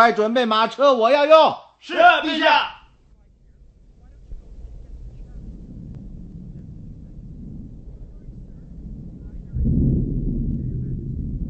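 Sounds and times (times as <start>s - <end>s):
speech: 0.0s - 2.8s
stormy wind roaring: 2.0s - 11.4s
deep rumbling thunder: 2.9s - 11.4s
rain: 4.3s - 11.4s.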